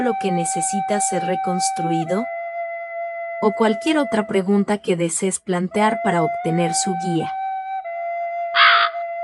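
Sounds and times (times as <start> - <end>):
speech: 0.0 - 2.4, 3.4 - 7.4
crow cawing: 8.5 - 9.1.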